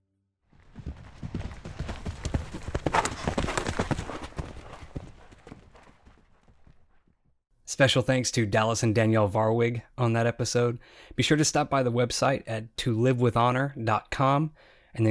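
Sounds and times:
horse hooves clip-clopping: 0:00.5 - 0:07.2
speech: 0:07.8 - 0:15.0.

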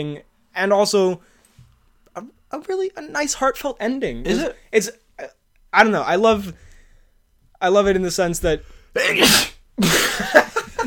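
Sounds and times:
speech: 0:00.0 - 0:01.3, 0:02.2 - 0:06.7, 0:07.6 - 0:10.4
loud sneeze distorting the microphone: 0:09.0 - 0:09.6.

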